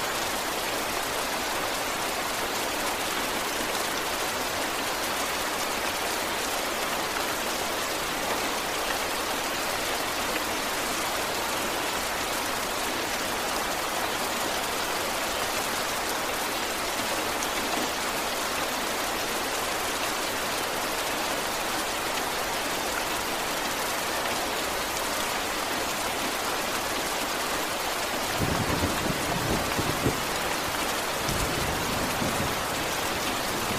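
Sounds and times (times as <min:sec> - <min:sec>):
medium-heavy rain falling: 0:00.0 - 0:33.7.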